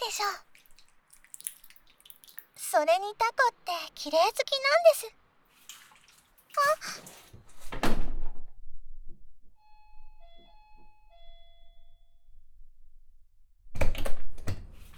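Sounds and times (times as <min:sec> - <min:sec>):
speech: 0:00.2 - 0:00.5, 0:02.7 - 0:05.2, 0:06.6 - 0:07.2
door being shut: 0:07.0 - 0:08.5.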